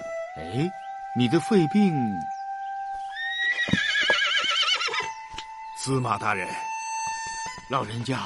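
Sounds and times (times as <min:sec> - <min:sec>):
speech: 0:00.4 - 0:02.3, 0:05.8 - 0:06.7, 0:07.7 - 0:08.2
horse whinnying: 0:03.1 - 0:05.2
dull hoof thuds: 0:03.6 - 0:04.2.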